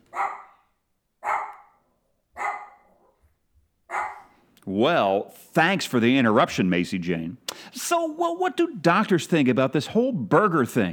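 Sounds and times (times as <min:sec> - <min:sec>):
puppy barking in sharp yaps: 0:00.1 - 0:03.2, 0:03.9 - 0:04.4
speech: 0:04.6 - 0:10.9.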